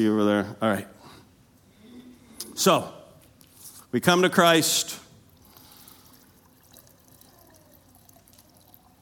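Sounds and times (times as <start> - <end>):
speech: 0.0 - 1.0, 2.6 - 3.0, 3.9 - 5.0
steady stream of liquid poured into a container: 5.2 - 9.0.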